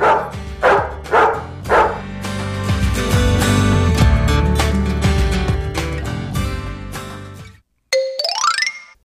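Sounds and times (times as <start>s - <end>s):
dog barking: 0.0s - 2.1s
cheerful music: 0.0s - 7.3s, 7.9s - 9.0s.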